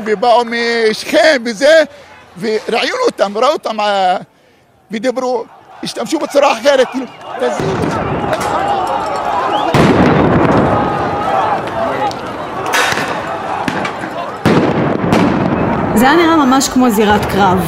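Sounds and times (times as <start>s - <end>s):
speech: 0.0s - 4.3s, 4.9s - 8.8s, 16.0s - 17.6s
crowd noise and shouting in the street: 0.0s - 17.6s
stun grenade blasts in the street: 9.6s - 10.8s, 12.8s - 15.9s.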